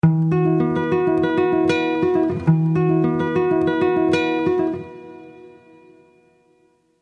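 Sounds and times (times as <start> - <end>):
guitar concert: 0.2 - 5.5.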